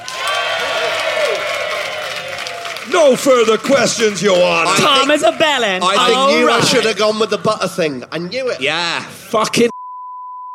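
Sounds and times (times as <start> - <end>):
audience applause and cheering: 0.0 - 7.3
speech: 2.9 - 9.8.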